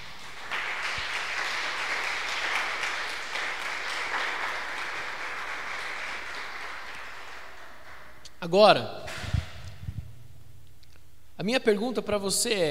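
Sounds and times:
audience applauding: 0.0 - 8.2
speech: 8.4 - 9.0, 11.4 - 12.6.

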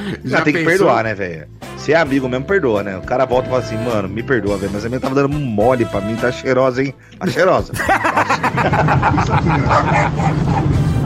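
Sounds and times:
speech: 0.1 - 10.9
laughter: 7.2 - 11.0
dog barking in rapid loud yaps: 9.6 - 11.0.

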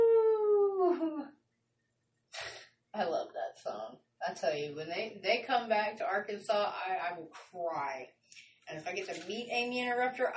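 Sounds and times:
person imitating wolf howl: 0.0 - 1.2
speech: 3.6 - 10.3.

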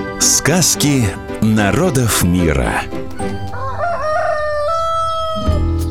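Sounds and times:
low rumbling noise: 0.1 - 5.8
speech: 0.2 - 3.5
rooster crowing: 2.7 - 5.7.

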